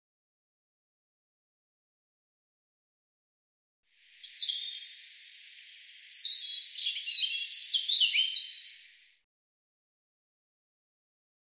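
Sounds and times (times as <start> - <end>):
European robin singing high thin warbling phrases: 4.0 - 9.2.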